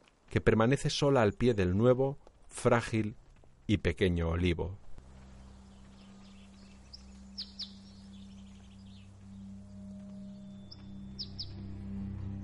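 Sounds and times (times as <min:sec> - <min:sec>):
speech: 0:00.4 - 0:04.8
steady low hum: 0:04.8 - 0:12.4
bird chirping and twittering: 0:05.0 - 0:11.6.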